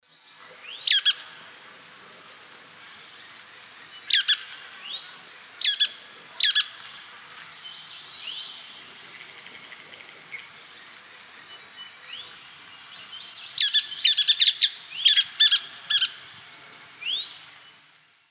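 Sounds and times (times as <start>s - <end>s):
brown headed nuthatch: 0.6s - 1.5s, 2.9s - 17.9s.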